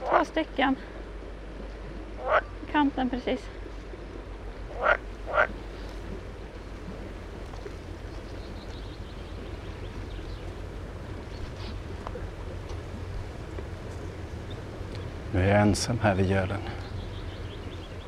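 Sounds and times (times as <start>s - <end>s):
pool frogs calling at a pond on Örskär in Sweden: 0.0s - 0.4s, 2.1s - 2.8s, 4.6s - 15.4s, 16.0s - 18.0s
low steady outdoor rumble: 0.0s - 18.0s
speech: 0.2s - 1.0s, 2.8s - 3.6s, 15.3s - 16.8s.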